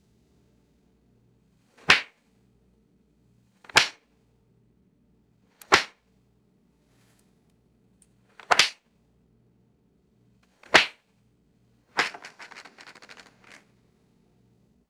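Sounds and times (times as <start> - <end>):
playing cards dropping on wood: 1.8 - 2.1, 3.7 - 4.0, 5.6 - 5.9, 8.4 - 8.8, 10.6 - 11.0, 12.0 - 13.6.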